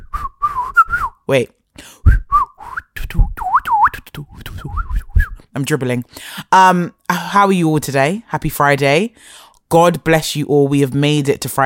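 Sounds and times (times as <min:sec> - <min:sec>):
person whistling to imitate howling wind: 0:00.0 - 0:01.2, 0:01.9 - 0:05.4
speech: 0:01.3 - 0:01.9, 0:05.6 - 0:11.6.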